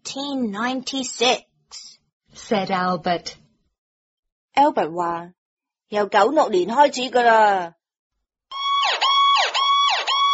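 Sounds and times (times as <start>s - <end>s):
speech: 0.1s - 1.8s, 2.4s - 3.4s, 4.6s - 7.8s
ambulance siren yelping: 8.5s - 10.3s.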